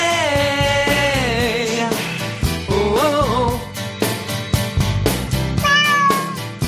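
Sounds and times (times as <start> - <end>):
busy rhythmic musical backing: 0.0 - 6.6
cat meowing: 5.6 - 6.6.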